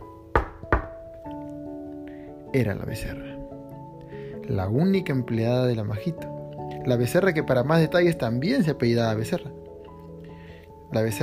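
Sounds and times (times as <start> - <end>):
firm knocking on a shop door: 0.4 - 1.0
speech: 2.5 - 3.3, 4.5 - 9.6, 10.9 - 11.2.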